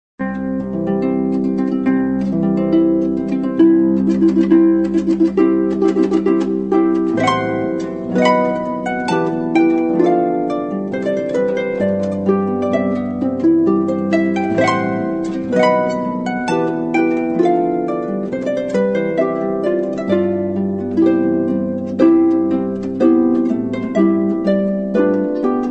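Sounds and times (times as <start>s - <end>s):
solo harp: 0.2s - 25.7s.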